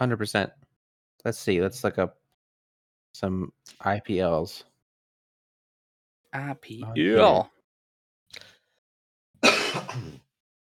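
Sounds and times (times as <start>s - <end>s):
speech: 0.0s - 0.6s, 1.2s - 2.2s, 3.2s - 4.7s, 6.3s - 7.6s, 9.4s - 10.2s
person coughing: 9.4s - 10.3s.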